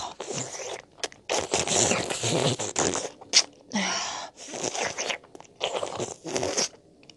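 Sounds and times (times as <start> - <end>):
loud wet slurping: 0.2 - 3.5, 4.4 - 6.8.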